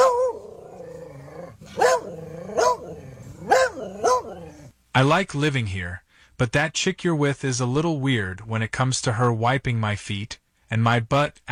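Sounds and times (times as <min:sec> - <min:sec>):
dog growling low: 0:00.0 - 0:04.7
speech: 0:05.0 - 0:11.5.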